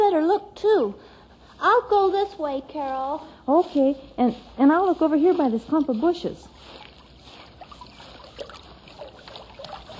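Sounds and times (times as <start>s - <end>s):
speech: 0.4s - 6.8s
brook water flowing with gurgles and splashes: 5.4s - 9.9s.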